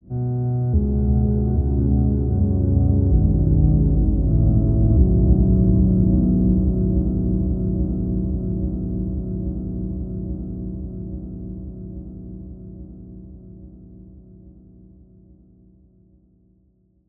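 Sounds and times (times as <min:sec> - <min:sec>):
calm musical element: 0:00.0 - 0:16.4.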